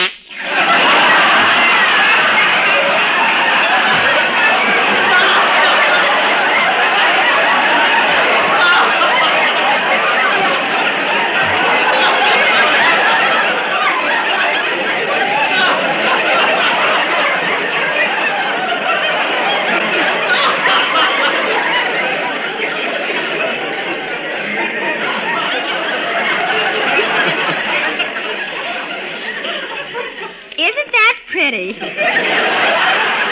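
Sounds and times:
canary chattering: 0:00.0 - 0:00.5
laughter: 0:00.0 - 0:33.3.

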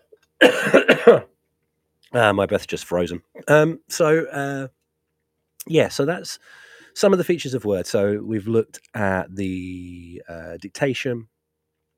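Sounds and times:
person coughing harshly: 0:00.4 - 0:01.3
speech: 0:00.4 - 0:01.3, 0:02.1 - 0:04.8, 0:05.6 - 0:11.3.

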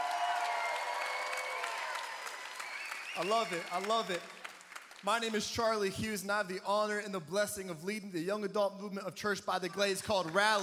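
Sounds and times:
church congregation cheering: 0:00.0 - 0:04.5
church congregation clapping: 0:00.0 - 0:06.0, 0:09.6 - 0:10.6
speech: 0:03.2 - 0:04.4, 0:05.0 - 0:10.6.

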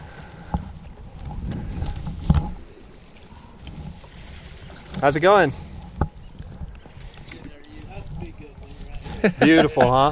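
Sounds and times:
boat engine rumbling on the water: 0:00.0 - 0:10.1
wind noise: 0:00.0 - 0:10.1
speech: 0:05.0 - 0:05.6, 0:09.2 - 0:10.1
laughter: 0:09.0 - 0:10.1.

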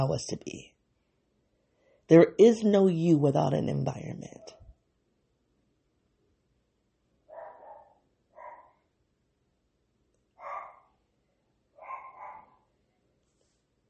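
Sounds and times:
speech: 0:00.0 - 0:00.7, 0:02.1 - 0:04.6
dogs barking: 0:07.3 - 0:08.8, 0:10.4 - 0:11.0, 0:11.8 - 0:12.7.

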